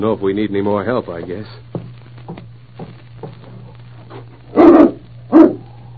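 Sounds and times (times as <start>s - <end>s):
speech: 0.0s - 2.4s
faint steady hum: 0.0s - 5.9s
dog barking: 4.5s - 5.7s.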